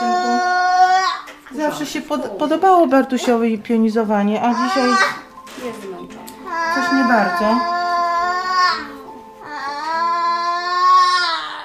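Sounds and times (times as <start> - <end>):
small child crying and whining during standing exercises: 0.0 - 1.3, 4.5 - 5.2, 6.5 - 11.6
speech: 1.7 - 7.8.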